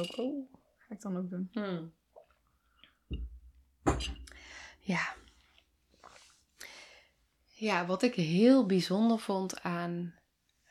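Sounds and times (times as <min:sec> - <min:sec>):
speech: 0:00.0 - 0:02.0, 0:04.8 - 0:05.2, 0:07.6 - 0:10.2
soft knock of a tea cup: 0:03.1 - 0:04.3.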